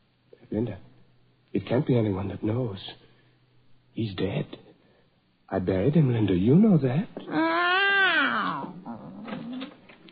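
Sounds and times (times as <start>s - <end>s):
speech: 0.5s - 0.9s, 1.5s - 3.0s, 4.0s - 4.6s, 5.5s - 7.7s
cat meowing: 7.2s - 9.8s.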